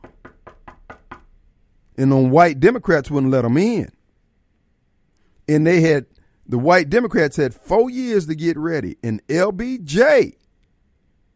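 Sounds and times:
knocking on a door: 0:00.0 - 0:01.4
speech: 0:02.0 - 0:04.0, 0:05.5 - 0:10.4.

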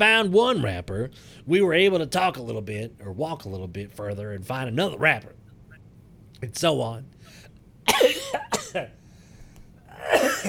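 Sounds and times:
speech: 0:00.0 - 0:05.4, 0:06.4 - 0:09.0, 0:10.0 - 0:10.4
harsh raspy cough: 0:07.9 - 0:09.0, 0:09.9 - 0:10.4.

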